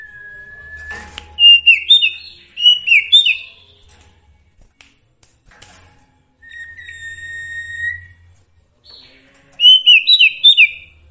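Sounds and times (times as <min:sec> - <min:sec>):
Sooty-headed bulbul song with bubbly chirping and soft whistle: 0:00.0 - 0:03.9, 0:06.4 - 0:11.0.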